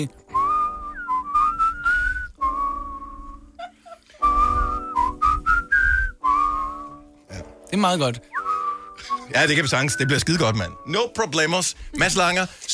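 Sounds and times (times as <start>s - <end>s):
speech: 0.0s - 0.2s, 7.8s - 8.3s, 9.3s - 12.7s
person whistling a bright wavering melody: 0.3s - 3.5s, 4.2s - 7.2s, 8.3s - 10.9s.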